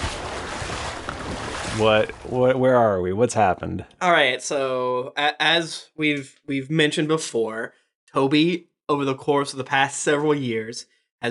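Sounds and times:
water splash: 0.0 - 2.6
speech: 1.8 - 11.2.

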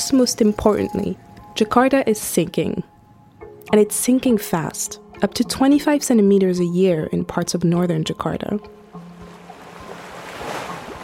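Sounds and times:
speech: 0.1 - 2.9, 3.7 - 8.8
wind: 8.8 - 11.0
ocean waves washing against a seawall: 9.0 - 11.0.

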